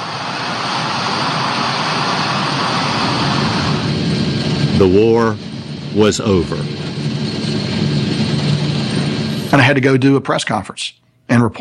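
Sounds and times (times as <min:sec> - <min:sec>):
C-17 military transport plane engines roaring during takeoff: 0:00.0 - 0:10.1
speech: 0:04.8 - 0:06.8, 0:09.5 - 0:11.5.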